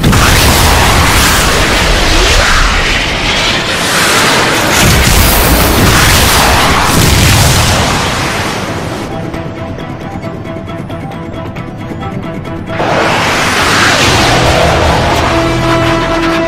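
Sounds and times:
cruise missiles being fired: 0.0 - 9.1, 12.7 - 16.4.

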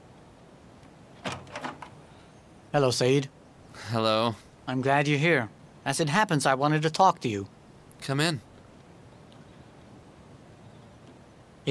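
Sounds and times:
door latch and handle clicking and rattling as door opens: 1.2 - 2.0
speech: 2.8 - 8.5.

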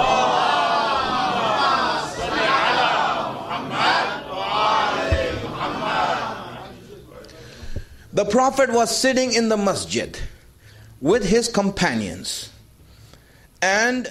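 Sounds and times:
crowd loudly chanting salawat, blessings upon the Prophet: 0.0 - 6.8
speech: 8.2 - 10.3, 11.0 - 12.5, 13.6 - 14.0.

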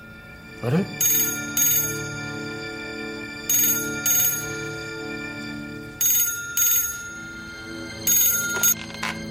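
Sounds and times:
speech: 0.6 - 1.5
telephone ringing with trilling bells: 1.0 - 2.6, 3.4 - 5.1, 6.0 - 9.1.

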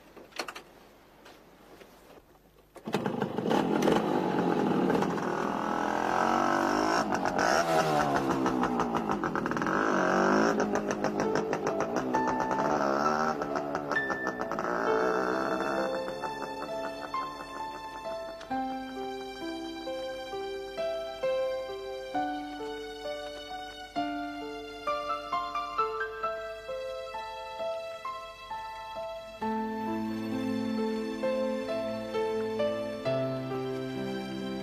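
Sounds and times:
car engine revving as it drives: 3.0 - 18.5
steady musical tones: 4.6 - 34.6.

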